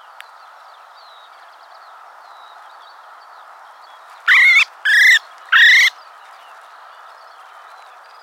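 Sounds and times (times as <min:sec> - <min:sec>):
common blackbird Turdus merula making harsh nasal calls: 0:04.3 - 0:06.0.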